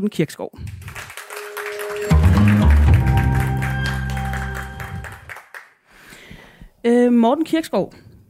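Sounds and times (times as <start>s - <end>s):
speech: 0.0s - 1.0s, 6.8s - 8.0s
audience clapping and cheering: 0.6s - 5.8s
band music with sustained low chords: 1.2s - 5.3s.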